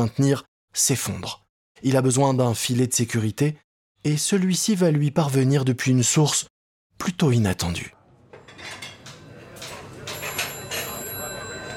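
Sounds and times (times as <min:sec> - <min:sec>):
speech: 0:00.0 - 0:08.0
clinking dishes and cutlery in a restaurant: 0:08.3 - 0:11.7
murmur of voices in a restaurant: 0:09.0 - 0:11.7
telephones ringing in a busy restaurant: 0:09.6 - 0:11.7.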